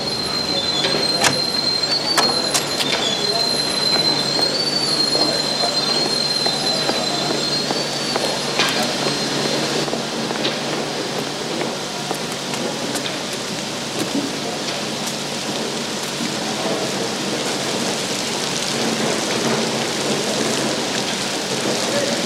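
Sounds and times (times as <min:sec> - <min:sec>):
train wheels squealing in a railway station: 0:00.0 - 0:10.0
steady rumble of a train in a railway station: 0:00.0 - 0:22.2.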